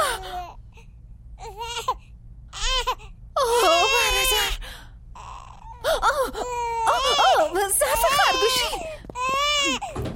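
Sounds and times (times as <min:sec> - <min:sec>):
steady low hum: 0:00.0 - 0:10.1
baby crying: 0:02.6 - 0:04.6, 0:05.2 - 0:10.0.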